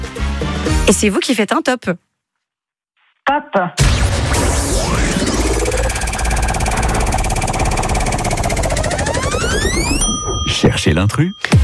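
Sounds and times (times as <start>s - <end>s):
speech: 0.4s - 2.1s, 3.3s - 4.0s, 9.7s - 11.6s
sweeping synthetic tones: 4.8s - 10.7s
game show prize wheel spinning with ratchet-like ticking: 5.6s - 10.9s.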